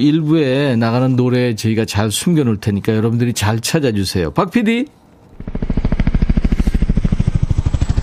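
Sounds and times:
speech: 0.0s - 5.0s
helicopter rotor chop flying past left to right: 5.3s - 8.0s.

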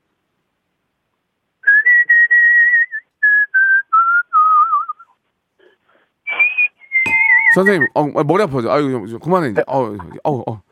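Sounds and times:
whistled melody refrain from a song: 1.6s - 5.2s, 6.3s - 8.0s
speech: 7.6s - 10.7s.

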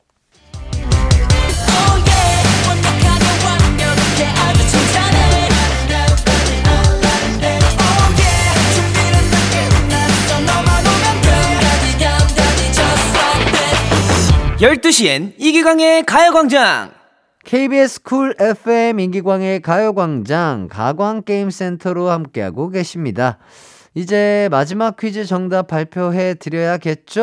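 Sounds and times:
Korean drama soundtrack ballad song on a radio show: 0.4s - 15.6s
speech: 14.6s - 27.2s.

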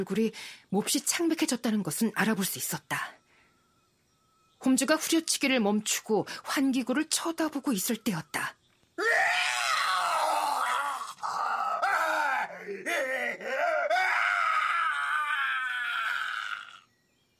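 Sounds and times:
speech: 0.0s - 3.2s, 4.6s - 9.5s
horrifying scream swelling into an anguished cry: 9.0s - 16.8s.

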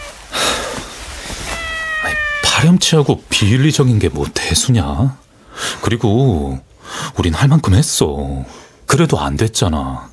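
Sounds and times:
neutered cat meowing: 0.0s - 0.2s, 1.4s - 2.9s
speech: 2.6s - 10.1s.

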